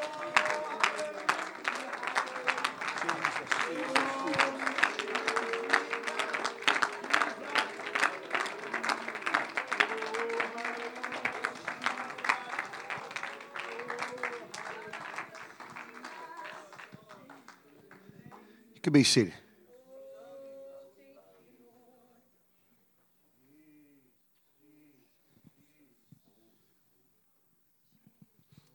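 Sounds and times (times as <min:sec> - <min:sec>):
congregation clapping hands during a church worship service: 0:00.0 - 0:19.3
speech: 0:18.8 - 0:19.4.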